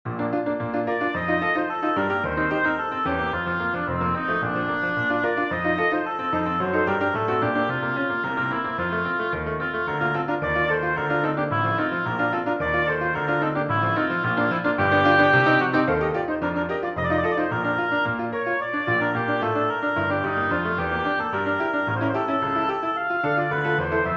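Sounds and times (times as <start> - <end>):
piano playing allegretto con moto: 0.0 - 24.1
oboe playing allegretto con moto: 0.2 - 24.1.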